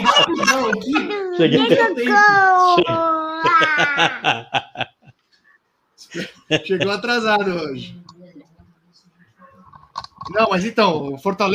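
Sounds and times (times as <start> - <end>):
laughter: 0.0 - 5.2, 6.1 - 7.1
baby crying: 0.2 - 4.4
speech: 1.4 - 5.0, 6.0 - 8.1, 10.2 - 11.5.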